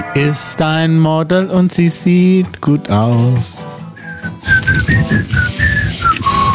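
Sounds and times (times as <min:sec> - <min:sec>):
speech: 0:00.2 - 0:03.7
person whistling a short melody: 0:04.0 - 0:06.5.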